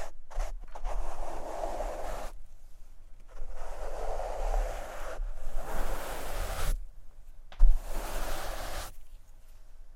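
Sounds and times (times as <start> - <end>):
microphone scratching and brushing: 0.4 - 2.4, 3.3 - 6.9, 7.6 - 9.1.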